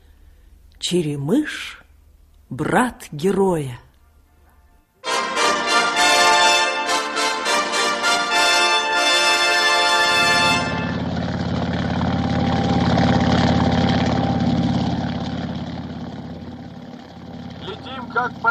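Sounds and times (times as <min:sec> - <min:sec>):
speech: 0:00.8 - 0:01.8, 0:02.5 - 0:03.8
aircraft engine running: 0:05.1 - 0:18.4.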